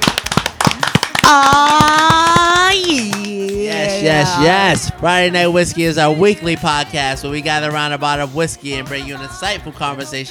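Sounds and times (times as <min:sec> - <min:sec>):
hand clapping: 0:00.0 - 0:04.4
person whooping: 0:01.2 - 0:04.8
speech: 0:01.3 - 0:01.8, 0:04.1 - 0:10.2.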